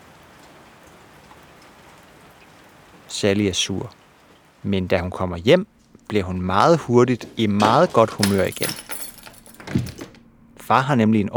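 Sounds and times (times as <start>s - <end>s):
raindrops pattering on a surface: 0.0s - 6.3s
steady rain falling: 0.0s - 7.1s
speech: 3.2s - 4.0s, 4.6s - 8.9s, 10.7s - 11.3s.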